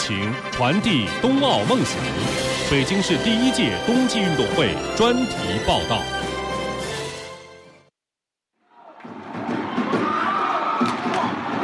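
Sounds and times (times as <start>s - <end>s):
speech: 0.1s - 6.2s
crowd cheering at an ice hockey rink at a city winter games final: 8.6s - 11.6s.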